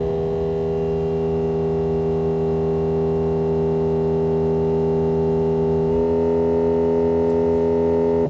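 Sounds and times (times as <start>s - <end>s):
dashboard buzz in a car: 0.0s - 8.2s.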